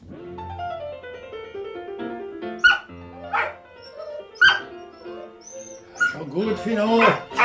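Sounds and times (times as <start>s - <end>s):
record of a concerto for three pianos: 0.0s - 7.4s
dog howling along to a piano concerto record: 2.6s - 6.2s, 6.9s - 7.4s
speech: 6.3s - 7.4s.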